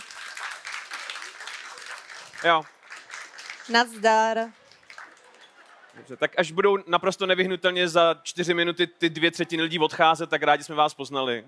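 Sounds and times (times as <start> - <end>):
live audience applauding: 0.0 - 6.3
speech: 2.4 - 2.8, 3.7 - 4.6, 6.0 - 11.4.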